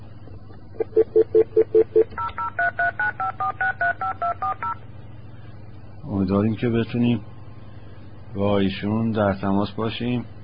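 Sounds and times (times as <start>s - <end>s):
touch-tone telephone dialing beeps after a dropped call: 1.0s - 4.8s
speech: 6.1s - 7.3s, 8.4s - 10.4s.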